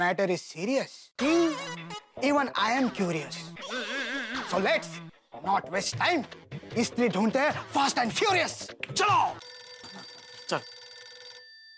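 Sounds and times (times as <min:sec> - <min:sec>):
speech: 0:00.0 - 0:03.5, 0:04.5 - 0:09.4, 0:10.5 - 0:10.7
telephone ringing with a bright electronic tone: 0:09.4 - 0:11.7.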